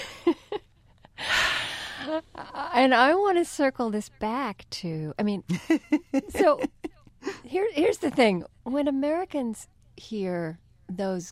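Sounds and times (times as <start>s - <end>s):
deep breath: 1.2s - 2.1s
speech: 2.1s - 6.8s, 7.5s - 11.3s.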